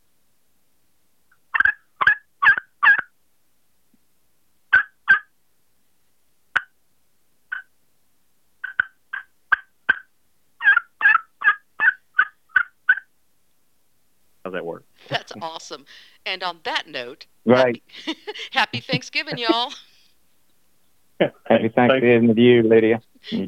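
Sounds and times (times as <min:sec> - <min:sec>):
turkey clucks and purrs scratched out on a slate call: 0:01.3 - 0:03.2, 0:04.7 - 0:05.3, 0:06.5 - 0:06.8, 0:07.5 - 0:07.7, 0:08.6 - 0:13.1
speech: 0:14.6 - 0:19.9, 0:21.2 - 0:23.4
laughter: 0:15.0 - 0:16.0, 0:17.5 - 0:20.0.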